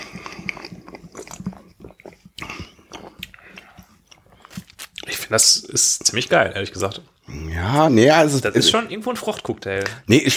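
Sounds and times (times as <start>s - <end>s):
person sipping dark clear craft beer with grapefruit aroma and swallowing: 0.0s - 5.7s
speech: 5.3s - 10.3s.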